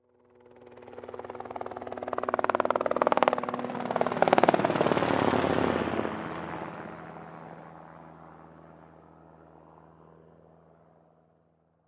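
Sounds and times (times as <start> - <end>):
transport helicopter flying by: 0.0 - 11.8.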